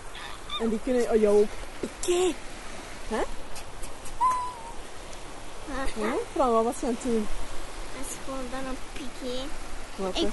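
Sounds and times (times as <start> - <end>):
steady outdoor hiss: 0.0 - 10.3
speech: 0.6 - 2.5, 3.1 - 3.4, 5.7 - 7.4, 8.0 - 10.3
woman giving hooting calls to shoo away seagulls: 4.2 - 4.8.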